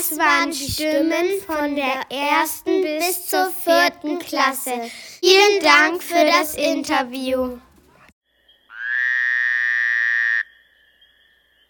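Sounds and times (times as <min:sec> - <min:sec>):
speech: 0:00.0 - 0:07.7
frog croaking: 0:08.7 - 0:10.7.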